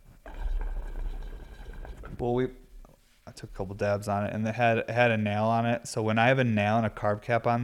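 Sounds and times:
water bubbling in a glass bubbler pipe: 0:00.0 - 0:02.4
speech: 0:02.2 - 0:02.6, 0:03.4 - 0:07.6.

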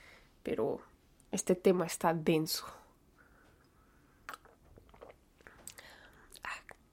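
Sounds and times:
speech: 0:00.4 - 0:02.8
soft mouth noises: 0:03.6 - 0:06.9
person sipping hot coffee from a cup: 0:04.3 - 0:05.2.

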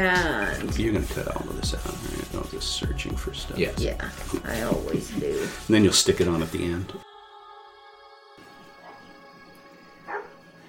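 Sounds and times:
speech: 0:00.0 - 0:07.1
dog barking: 0:10.1 - 0:10.4.

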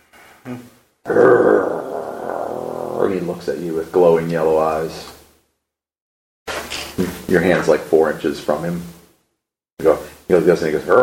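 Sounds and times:
speech: 0:00.4 - 0:01.4, 0:03.1 - 0:05.2, 0:07.3 - 0:09.0, 0:09.8 - 0:11.0
person imitating a dog snarling and growling: 0:00.5 - 0:03.4.

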